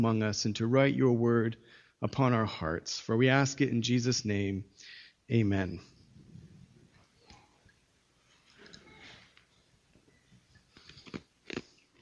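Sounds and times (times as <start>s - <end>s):
speech: 0.0s - 5.9s
piece of ice being chewed: 10.6s - 11.9s.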